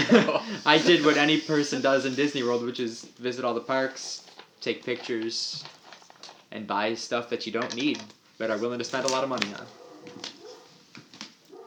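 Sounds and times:
laughter: 0:00.0 - 0:01.4
speech: 0:00.1 - 0:05.8, 0:06.5 - 0:10.4
dog whimpering: 0:09.7 - 0:10.8.

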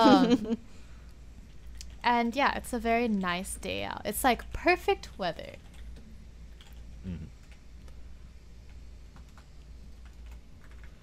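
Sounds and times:
speech: 0:00.0 - 0:00.8, 0:02.0 - 0:05.6, 0:07.0 - 0:07.3
low hum: 0:00.0 - 0:11.0
typing on a computer keyboard: 0:06.5 - 0:06.8, 0:09.1 - 0:11.0.

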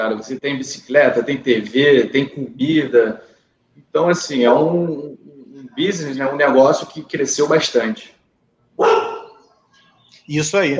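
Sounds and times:
speech: 0:00.0 - 0:05.2, 0:05.8 - 0:08.2, 0:10.3 - 0:10.7
dog barking: 0:08.8 - 0:09.4.

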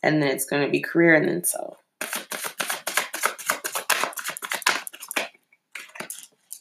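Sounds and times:
speech: 0:00.0 - 0:02.2
deck of tarot cards being shuffled: 0:02.0 - 0:06.5.

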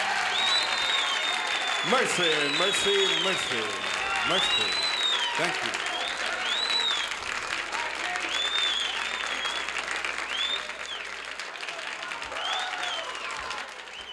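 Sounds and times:
large live audience applauding after a song performance: 0:00.0 - 0:14.1
audience whoops and whistles: 0:00.1 - 0:07.2, 0:08.2 - 0:11.1, 0:12.3 - 0:14.1
speech: 0:01.8 - 0:04.8, 0:05.4 - 0:05.9.

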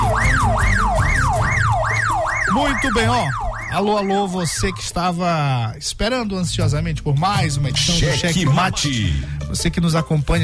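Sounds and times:
police siren wailing: 0:00.0 - 0:05.1
speech: 0:02.6 - 0:10.4.

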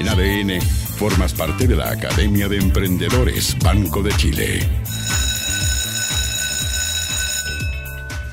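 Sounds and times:
speech: 0:00.1 - 0:05.2
electric school bell ringing: 0:04.9 - 0:08.3.

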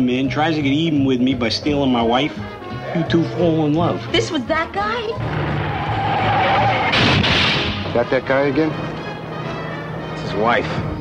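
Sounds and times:
speech: 0:00.0 - 0:07.3, 0:08.0 - 0:08.9, 0:10.4 - 0:10.9
sustained rushing roar of car collision: 0:05.2 - 0:08.0
car collision crashing impact: 0:05.2 - 0:08.2
squealing tyre skid: 0:05.4 - 0:07.1.

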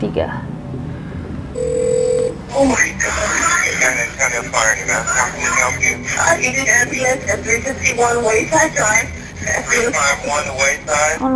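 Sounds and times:
speech: 0:00.0 - 0:00.9, 0:02.6 - 0:11.3
low hum: 0:00.0 - 0:11.3
telephone ringing at the start of a 911 emergency call: 0:01.6 - 0:07.9
laughter: 0:02.5 - 0:11.0.

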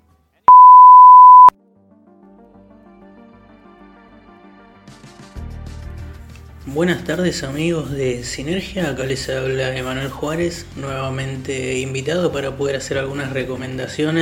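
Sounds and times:
answering machine beep: 0:00.5 - 0:01.5
speech: 0:06.6 - 0:14.1.

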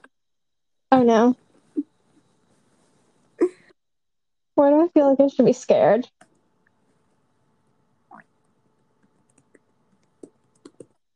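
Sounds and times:
speech: 0:01.0 - 0:01.4, 0:04.6 - 0:06.2
typing on a keyboard: 0:09.2 - 0:11.0.

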